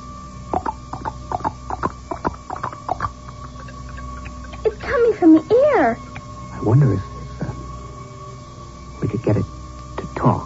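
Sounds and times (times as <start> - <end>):
faint steady hum: 0.0 - 10.4
tapping imitating horse hooves on a hard surface: 0.5 - 4.6
speech: 5.2 - 6.0, 6.6 - 7.1.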